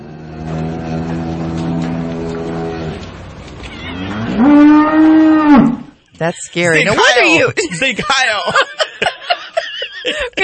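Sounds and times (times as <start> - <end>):
cow mooing: 0.0 - 5.9
speech: 6.2 - 8.8
laughter: 6.6 - 10.4.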